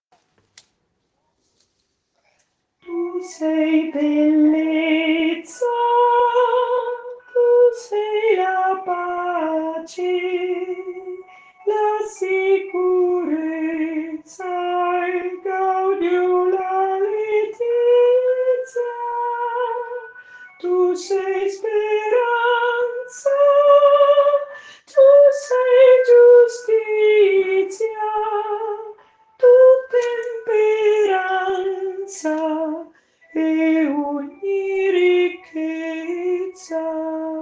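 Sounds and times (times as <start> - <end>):
soprano voices singing: 2.8 - 37.3.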